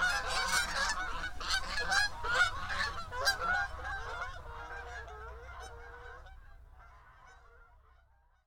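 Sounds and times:
geese honking in flight: 0:00.0 - 0:08.0.

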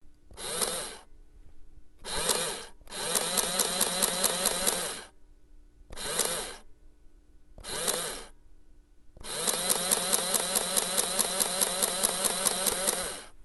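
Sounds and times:
calculating machine: 0:00.4 - 0:01.0, 0:02.0 - 0:05.1, 0:06.0 - 0:06.6, 0:07.6 - 0:08.3, 0:09.2 - 0:13.2.

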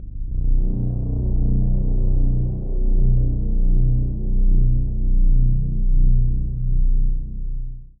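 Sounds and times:
dark synth pad in G: 0:00.0 - 0:07.8.

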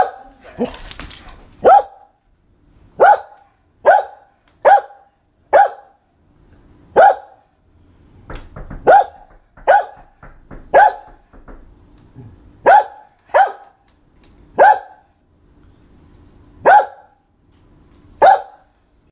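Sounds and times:
dog barking: 0:00.0 - 0:00.4, 0:01.6 - 0:02.2, 0:03.0 - 0:06.0, 0:06.9 - 0:07.5, 0:08.8 - 0:10.1, 0:10.7 - 0:11.2, 0:12.6 - 0:13.8, 0:14.6 - 0:15.1, 0:16.6 - 0:17.2, 0:18.2 - 0:18.7.

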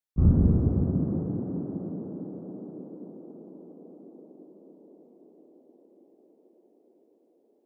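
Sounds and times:
distant shot: 0:00.2 - 0:04.2.

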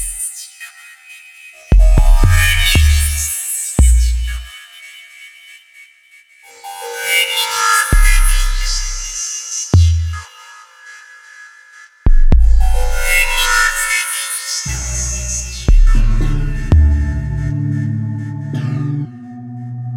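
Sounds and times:
industrial synth: 0:01.7 - 0:04.5, 0:07.9 - 0:10.5, 0:12.1 - 0:18.8.

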